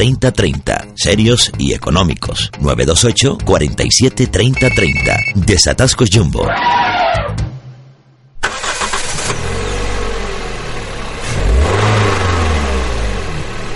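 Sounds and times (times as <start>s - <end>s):
speech: 0.0s - 7.2s
small licence-free microcar engine starting, idling and revving: 8.5s - 13.7s.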